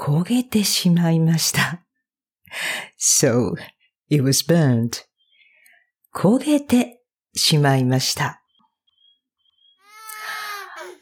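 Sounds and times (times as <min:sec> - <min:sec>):
speech: 0:00.0 - 0:01.8, 0:02.5 - 0:05.1, 0:06.1 - 0:08.4
baby crying: 0:09.8 - 0:11.0.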